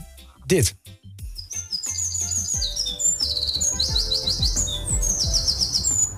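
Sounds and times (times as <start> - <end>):
speech: 0.5 - 1.0
small bird singing next to a window: 1.2 - 6.1.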